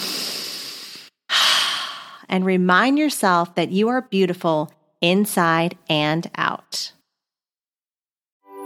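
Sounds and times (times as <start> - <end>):
person breathing in and out during a breathing exercise: 0.0 - 2.3
speech: 2.3 - 7.0.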